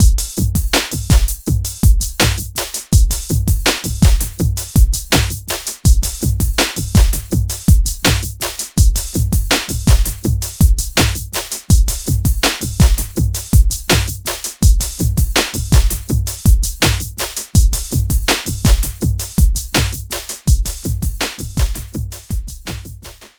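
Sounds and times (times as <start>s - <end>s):
electronic drums: 0.0s - 23.3s.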